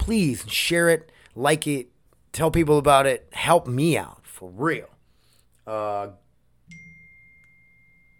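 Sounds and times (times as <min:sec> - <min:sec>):
speech: 0:00.1 - 0:04.9, 0:05.6 - 0:06.8
phone text message notification chime: 0:06.7 - 0:08.1.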